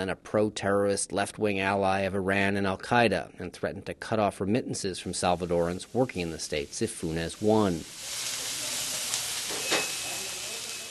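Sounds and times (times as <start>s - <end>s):
speech: 0.0s - 8.3s
pork chops, tomatoes and onions sizzling on a grill at a small cafeteria: 5.0s - 10.8s.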